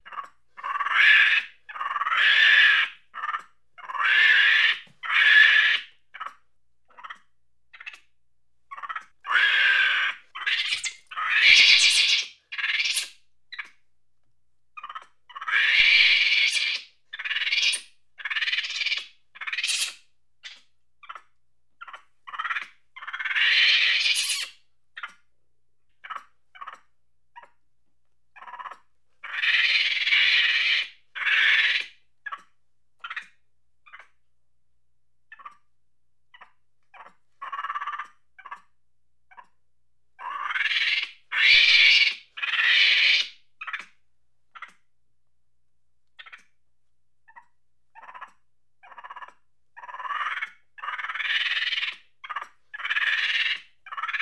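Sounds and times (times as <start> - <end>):
monkey chattering angrily: 0.0 - 7.2, 8.7 - 13.1, 14.8 - 25.2, 28.4 - 33.3, 36.4 - 38.6, 40.2 - 43.9, 47.3 - 54.1.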